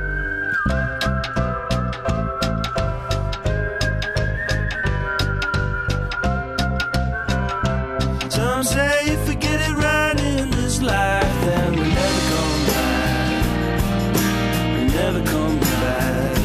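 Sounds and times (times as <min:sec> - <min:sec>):
pop track bass: 0:00.0 - 0:16.4
whistled melody: 0:00.0 - 0:16.4
punchy pop drum beat: 0:08.3 - 0:16.4.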